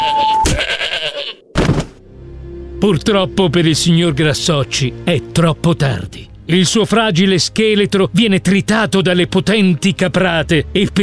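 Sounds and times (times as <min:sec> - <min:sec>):
goat bleating: 0:00.0 - 0:01.4
speech: 0:02.8 - 0:11.0.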